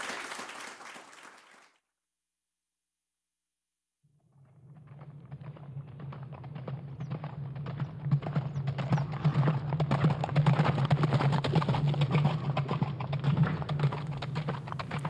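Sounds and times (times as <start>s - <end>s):
horse hoofbeats on the ground: 4.6s - 15.0s.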